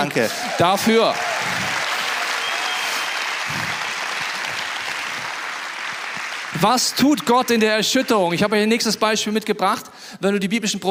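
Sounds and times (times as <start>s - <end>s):
speech: 0.0s - 1.3s, 6.6s - 10.9s
sustained applause from a large audience: 0.0s - 8.5s.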